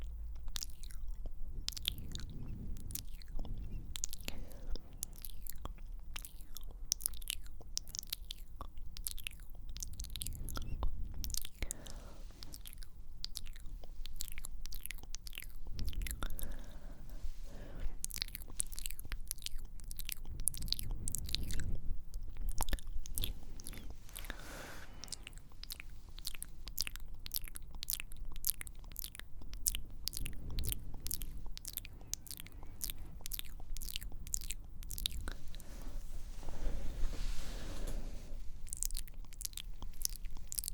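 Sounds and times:
low rumbles: 0:00.0 - 0:06.1, 0:09.0 - 0:40.7
rapid wet mouth clicks and tongue taps: 0:00.0 - 0:16.8, 0:18.0 - 0:35.6, 0:38.6 - 0:40.7
breathy sounds: 0:01.9 - 0:05.0, 0:10.3 - 0:12.6, 0:15.7 - 0:18.1, 0:23.2 - 0:25.6, 0:35.2 - 0:38.6.

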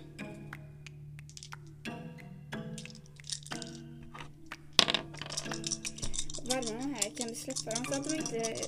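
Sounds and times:
dice clattering across a tabletop: 0:01.2 - 0:01.7, 0:02.8 - 0:08.6
speech: 0:06.6 - 0:08.6.

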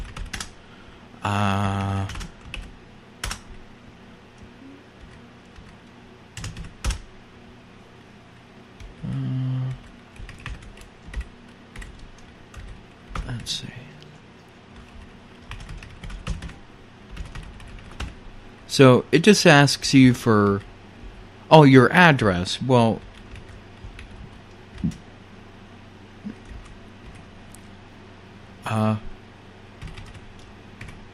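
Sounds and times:
computer keyboard keys tapped entering card payment details: 0:00.0 - 0:00.5, 0:01.6 - 0:03.4, 0:05.0 - 0:05.8, 0:06.4 - 0:07.0, 0:10.2 - 0:13.5, 0:14.8 - 0:18.2, 0:23.0 - 0:25.0, 0:29.8 - 0:31.0
speech: 0:01.2 - 0:02.2, 0:13.5 - 0:13.8, 0:18.8 - 0:20.7, 0:21.5 - 0:23.1.

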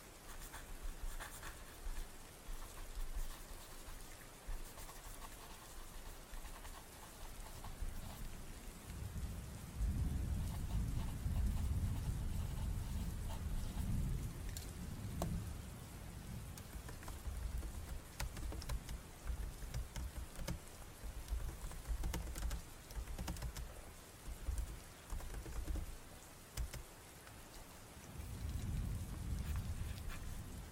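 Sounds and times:
rain falling steadily and densely: 0:00.0 - 0:30.7.

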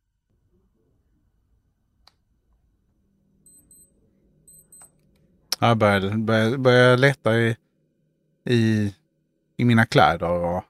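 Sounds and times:
digital clock beeping inside a tent: 0:03.5 - 0:05.0
speech: 0:05.6 - 0:07.6, 0:08.4 - 0:09.0, 0:09.6 - 0:10.6.

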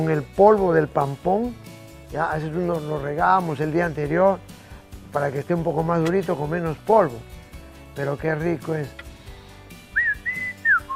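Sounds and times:
speech: 0:00.0 - 0:04.5, 0:05.1 - 0:07.4, 0:08.0 - 0:09.0
person whistling a short three-part signal call at a house: 0:09.9 - 0:10.9.

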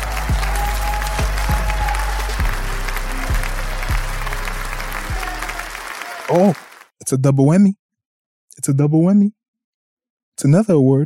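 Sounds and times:
crowd clapping: 0:00.0 - 0:06.9
speech: 0:06.4 - 0:07.8, 0:08.6 - 0:09.4, 0:10.4 - 0:11.0.

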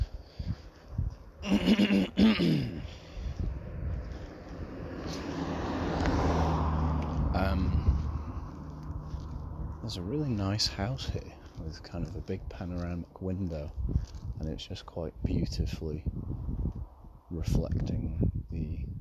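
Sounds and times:
car engine and tyre rumble: 0:00.0 - 0:18.9
speech: 0:01.4 - 0:02.8, 0:09.9 - 0:16.2, 0:17.3 - 0:18.2
car passing on a street: 0:02.7 - 0:12.8.

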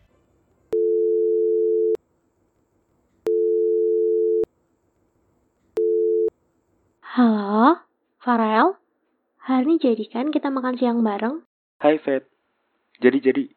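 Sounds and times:
telephone ringback tone of a call placed on a campus: 0:00.8 - 0:02.0, 0:03.3 - 0:04.5, 0:05.8 - 0:06.3
speech: 0:07.2 - 0:08.8, 0:09.5 - 0:12.3, 0:13.0 - 0:13.5.

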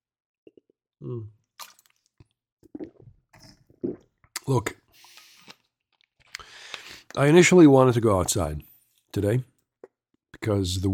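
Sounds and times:
person drinking water: 0:00.4 - 0:07.2
speech: 0:01.0 - 0:01.4, 0:04.5 - 0:04.8, 0:07.2 - 0:09.5, 0:10.4 - 0:10.9.

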